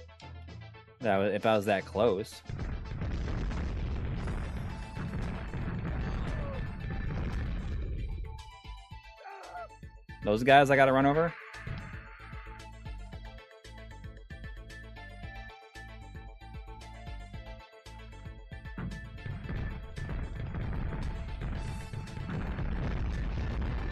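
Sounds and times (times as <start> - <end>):
speech: 1.0 - 2.6, 10.2 - 11.4
video game explosion sound effects: 2.5 - 8.6, 18.6 - 23.9.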